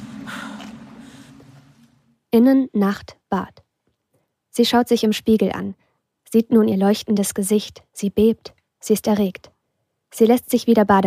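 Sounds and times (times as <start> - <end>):
heavy breathy exhales: 0.0 - 2.0
low steady hum: 0.0 - 2.4
speech: 2.3 - 3.6, 4.6 - 9.5, 10.1 - 11.0.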